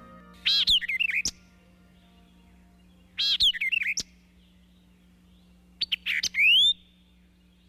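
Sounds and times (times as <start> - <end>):
White-eyed Vireo singing sharp slurred and chattering phrases: 0.0 - 2.6
faint steady low hum: 0.0 - 7.6.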